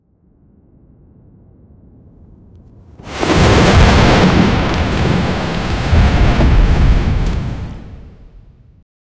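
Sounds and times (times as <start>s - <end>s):
enormous epic soundscape: 3.0s - 8.5s.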